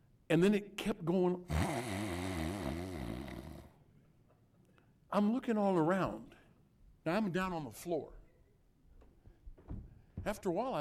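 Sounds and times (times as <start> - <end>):
speech: 0.3 - 1.6, 5.1 - 6.4, 7.0 - 8.2, 10.2 - 10.7
man imitating snoring: 1.4 - 3.8.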